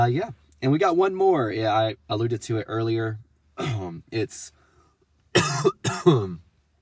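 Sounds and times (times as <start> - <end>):
speech: 0.0 - 4.6, 5.3 - 6.4
harsh chesty coughs: 3.6 - 3.9, 5.3 - 6.4.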